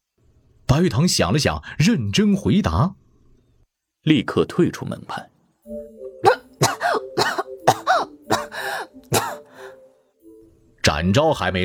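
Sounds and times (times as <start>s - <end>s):
speech: 0.7s - 3.0s, 4.0s - 5.3s, 10.8s - 11.6s
child coughing after choking on tea: 6.2s - 9.5s
child breathing quietly: 8.4s - 10.2s.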